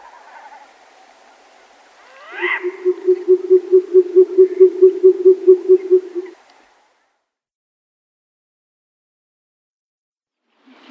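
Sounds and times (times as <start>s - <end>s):
male short-eared owl hooting low during flight display: 2.1s - 6.4s
short-eared owl higher rasping note: 2.4s - 6.3s.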